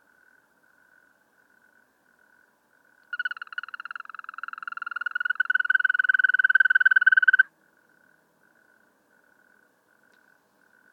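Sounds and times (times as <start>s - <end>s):
European green toad giving a pulsed trill: 3.1s - 7.5s.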